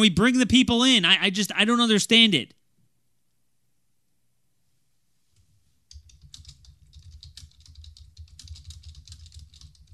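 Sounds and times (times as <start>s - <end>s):
speech: 0.0s - 2.6s
typing on a computer keyboard: 5.9s - 9.9s.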